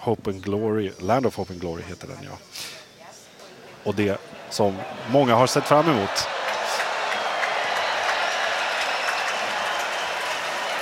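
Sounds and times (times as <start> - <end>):
speech: 0.0 - 2.8, 3.8 - 6.4
large crowd applauding: 3.9 - 10.8.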